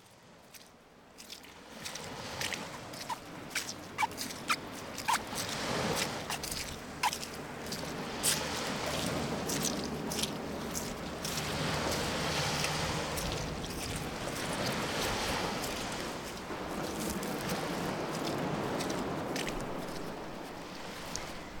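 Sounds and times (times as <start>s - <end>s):
ocean waves rushing: 1.6s - 21.5s.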